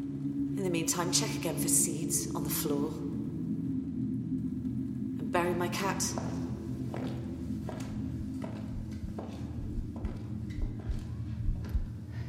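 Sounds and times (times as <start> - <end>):
constant low hum: 0.0 - 12.2
speech: 0.6 - 3.1, 5.6 - 6.4
footsteps receding: 6.1 - 12.0.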